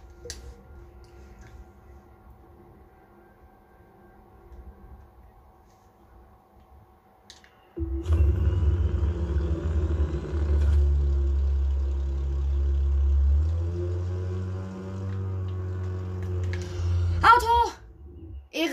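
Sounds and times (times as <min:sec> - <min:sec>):
low steady video game car engine idling: 0:07.8 - 0:18.4.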